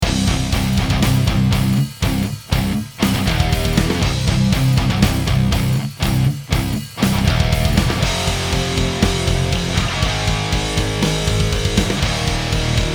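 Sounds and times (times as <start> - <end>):
amplifier: 0.0 - 12.9.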